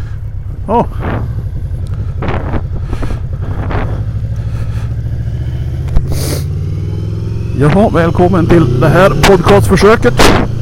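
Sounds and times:
motorcycle engine droning while riding: 0.0 - 10.6
wind buffeting the microphone in loud rushing gusts: 0.4 - 4.2
speech: 0.7 - 1.4, 7.6 - 10.6.

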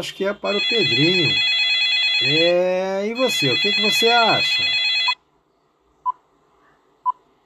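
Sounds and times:
speech: 0.0 - 1.5, 2.2 - 4.8
electronic telephone ring tone: 0.4 - 5.2.

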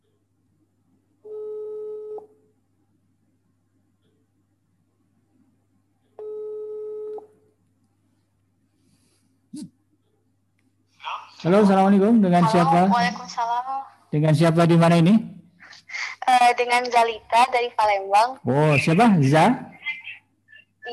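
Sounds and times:
low hum: 0.0 - 20.9
telephone line tone as a call is placed: 1.2 - 2.3, 6.2 - 7.3
speech: 11.4 - 19.7.

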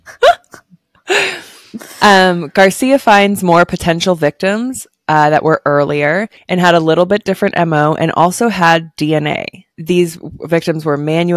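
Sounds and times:
hiccup: 0.1 - 0.7
speech: 2.0 - 11.3.

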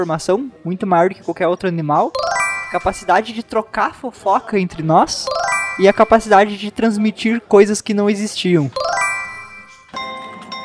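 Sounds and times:
speech: 0.0 - 8.8
slot machine electronic chimes and jingling tones: 2.2 - 3.5, 5.2 - 6.8, 8.7 - 10.6.

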